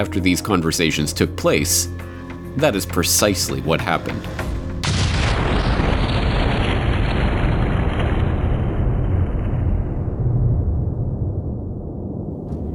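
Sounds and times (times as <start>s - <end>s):
speech: 0.0s - 4.5s
torpedo explosion striking a ship: 4.5s - 12.7s.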